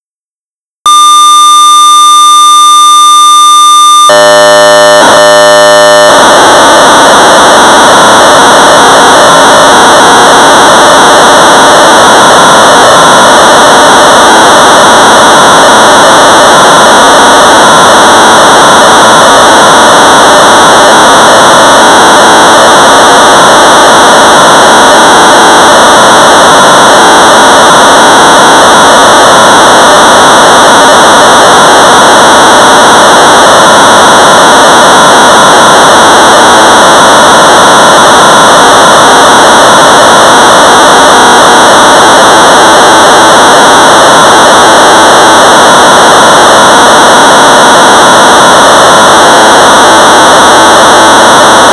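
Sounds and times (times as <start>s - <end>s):
1200 baud modem data tones: 0.8s - 51.7s.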